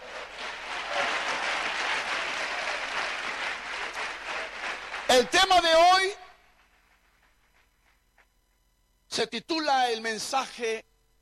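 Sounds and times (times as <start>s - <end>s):
loud sustained applause from a large crowd: 0.0s - 6.1s
speech: 5.2s - 6.2s, 9.2s - 10.9s.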